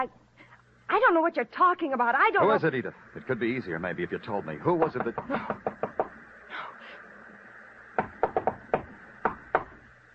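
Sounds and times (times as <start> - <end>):
speech: 0.0 - 0.2, 0.9 - 5.8
sharp knocks on a door: 4.8 - 6.2, 8.0 - 9.8.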